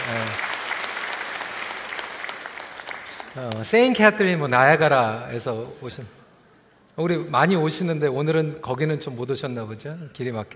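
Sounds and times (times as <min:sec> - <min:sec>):
audience applauding: 0:00.0 - 0:04.0
speech: 0:03.4 - 0:06.2, 0:07.0 - 0:10.5.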